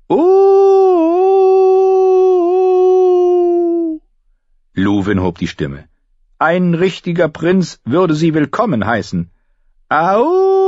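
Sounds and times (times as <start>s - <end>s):
speech: 0.1s - 0.4s, 4.8s - 10.6s
boy howling like a wolf: 0.1s - 4.0s, 10.1s - 10.6s.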